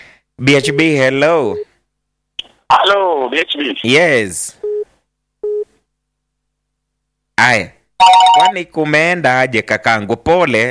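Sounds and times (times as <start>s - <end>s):
speech: 0.4s - 1.7s, 2.7s - 4.6s, 7.4s - 10.6s
telephone busy tone after a dropped call: 8.0s - 8.5s.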